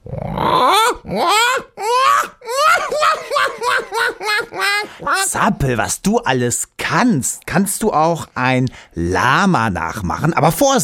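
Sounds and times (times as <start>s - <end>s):
human voice imitating a black-headed gull: 0.0s - 2.8s
speech: 1.1s - 1.4s, 5.4s - 10.8s
laughter: 1.2s - 5.5s.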